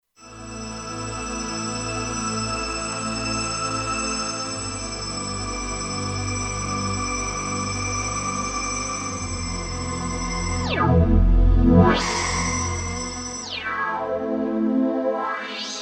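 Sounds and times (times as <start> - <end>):
ethereal strings on a Kurzweil K2500X: 0.4 - 15.3.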